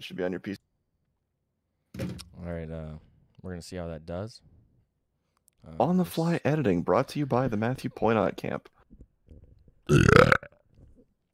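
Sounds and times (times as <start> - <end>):
speech: 0.0 - 0.7, 2.4 - 4.5, 5.6 - 8.8, 9.9 - 10.4
loud rough voiced burp: 9.9 - 10.6.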